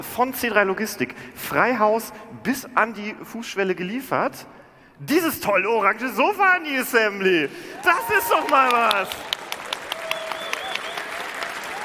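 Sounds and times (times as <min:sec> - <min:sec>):
speech: 0:00.0 - 0:09.4
audience applause at a prize giveaway event: 0:07.8 - 0:11.8.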